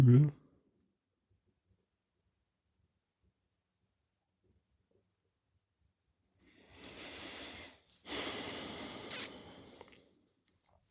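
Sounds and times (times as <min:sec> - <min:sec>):
speech: 0:00.0 - 0:00.4
slow deep breath during a relaxation exercise: 0:06.5 - 0:10.2.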